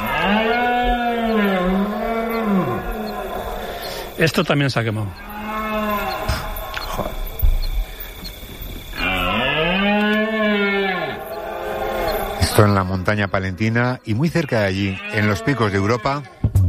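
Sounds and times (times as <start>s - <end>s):
red deer stags bellowing during the rut: 0.0s - 4.2s, 5.1s - 7.4s, 8.9s - 12.8s, 14.4s - 16.5s
speech: 4.2s - 5.3s, 12.6s - 16.4s.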